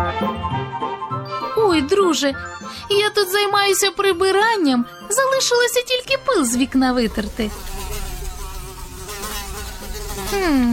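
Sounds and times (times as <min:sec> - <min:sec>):
speech: 0:00.2 - 0:00.6, 0:01.7 - 0:07.8, 0:10.3 - 0:10.7
fly buzzing: 0:06.6 - 0:10.7.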